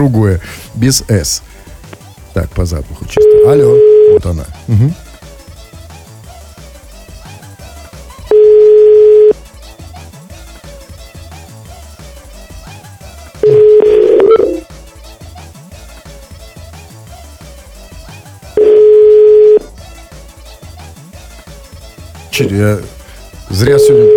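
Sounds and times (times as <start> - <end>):
speech: 0.0 - 1.5, 2.4 - 5.0, 22.4 - 24.1
telephone ringback tone from a radio studio call: 3.2 - 4.3, 8.3 - 9.4, 13.4 - 14.6, 18.6 - 19.7, 23.8 - 24.1.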